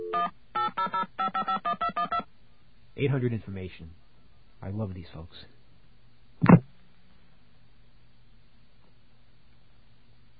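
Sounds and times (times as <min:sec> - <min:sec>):
touch-tone telephone dialing a number: 0:00.0 - 0:02.2
speech: 0:03.0 - 0:05.6.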